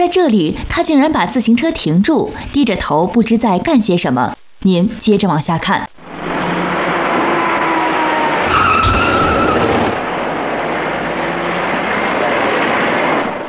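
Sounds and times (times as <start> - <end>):
speech: 0.0 - 5.9
steady loud road noise on a multi-lane road: 6.0 - 13.4
silver passenger car tyres squealing on a multi-lane road: 6.1 - 10.1.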